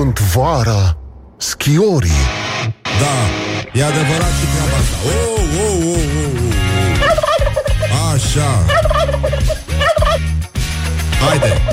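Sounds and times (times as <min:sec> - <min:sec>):
speech: 0:00.1 - 0:06.4, 0:07.8 - 0:09.6, 0:11.2 - 0:11.7
turkey gobbling: 0:06.8 - 0:08.0, 0:08.6 - 0:10.2.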